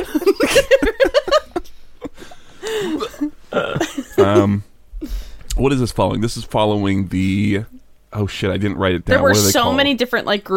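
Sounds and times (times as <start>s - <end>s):
person chuckling: 0.0s - 4.6s
person clearing throat: 2.9s - 4.6s
speech: 5.6s - 10.5s.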